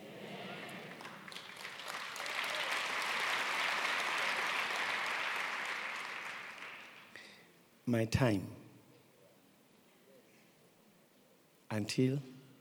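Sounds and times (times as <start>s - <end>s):
church audience applauding: 0.0s - 7.1s
speech: 7.9s - 8.6s, 11.8s - 12.3s.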